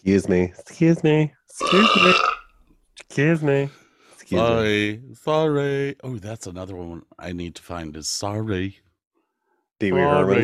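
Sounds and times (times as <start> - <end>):
speech: 0.0 - 2.3, 3.0 - 8.8, 9.8 - 10.4
loud drawn-out burp: 1.6 - 2.5.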